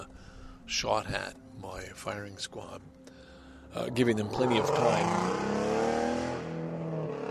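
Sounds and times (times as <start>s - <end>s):
speech: 0.7s - 3.0s, 3.7s - 5.9s
car engine passing by: 4.5s - 7.2s.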